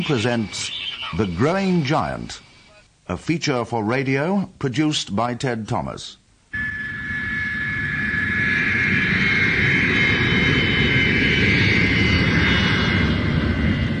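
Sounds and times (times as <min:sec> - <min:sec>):
speech: 0:00.0 - 0:02.5, 0:03.1 - 0:06.2
jet airliner landing on the runway at Kai Tak airport in Hong Kong: 0:00.0 - 0:02.8, 0:06.6 - 0:13.9
high thin turbine whine: 0:00.0 - 0:03.3, 0:06.5 - 0:13.9.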